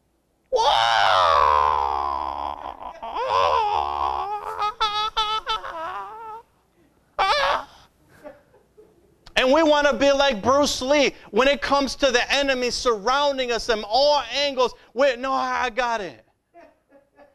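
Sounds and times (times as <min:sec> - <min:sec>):
person letting out martial-arts style screams: 0:00.5 - 0:06.4, 0:07.2 - 0:07.8
speech: 0:09.6 - 0:16.2.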